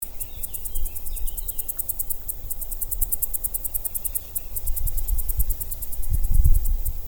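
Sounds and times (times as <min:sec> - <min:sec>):
Tettigettalna argentata cicada: 0:00.0 - 0:07.0.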